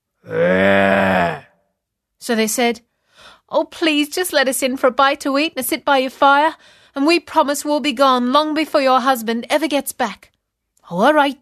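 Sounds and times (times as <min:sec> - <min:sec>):
voice imitating a growling stomach: 0:00.2 - 0:01.6
speech: 0:02.3 - 0:10.3, 0:10.9 - 0:11.4.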